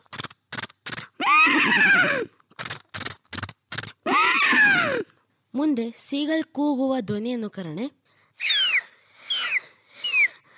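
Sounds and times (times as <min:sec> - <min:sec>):
horse neighing in long whinnies: 0:01.2 - 0:02.3, 0:04.0 - 0:05.1
speech: 0:05.6 - 0:08.6.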